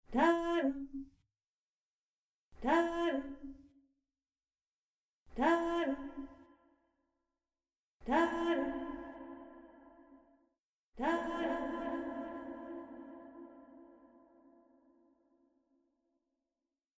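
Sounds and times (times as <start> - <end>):
woman's voice, dry to reverberant: 0.1 - 1.0, 2.6 - 3.6, 5.4 - 6.3, 8.0 - 9.5, 11.0 - 14.0.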